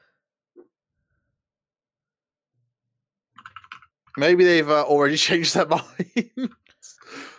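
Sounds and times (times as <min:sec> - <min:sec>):
soft computer mouse clicks: 0:03.4 - 0:03.9
keyboard typing: 0:03.4 - 0:04.3
speech: 0:04.2 - 0:07.0
laughter: 0:05.3 - 0:06.5.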